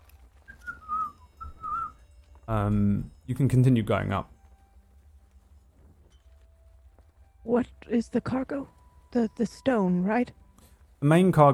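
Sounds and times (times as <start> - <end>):
low hum: 0.0 - 11.5
man whistling a short wavering tune to himself: 0.5 - 2.0
speech: 2.5 - 4.4, 7.6 - 10.4, 11.0 - 11.5.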